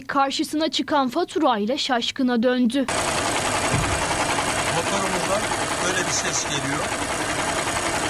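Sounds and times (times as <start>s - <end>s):
speech: 0.1s - 3.4s, 6.1s - 7.2s
car engine with engine fault running noisily: 2.9s - 8.0s
valve-like ticking clatter from a faulty car engine: 2.9s - 8.0s.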